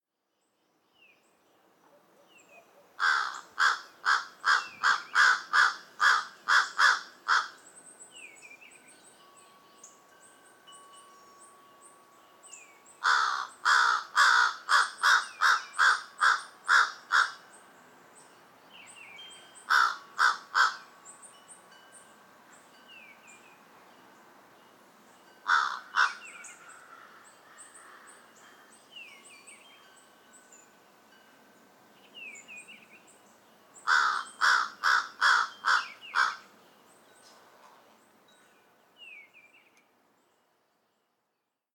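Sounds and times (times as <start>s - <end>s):
American crow Corvus brachyrhynchos paulus: 3.0s - 7.6s, 13.0s - 17.4s, 19.7s - 20.9s, 25.5s - 28.7s, 33.9s - 36.5s.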